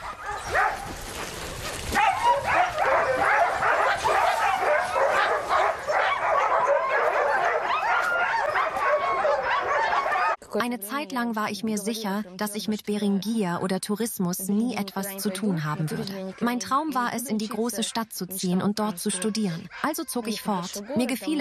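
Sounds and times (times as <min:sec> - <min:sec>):
sled dog puppies yipping and barking excitedly: 0:00.0 - 0:10.4
sled dog puppies whimpering high-pitched: 0:02.0 - 0:10.4
speech: 0:10.6 - 0:21.4.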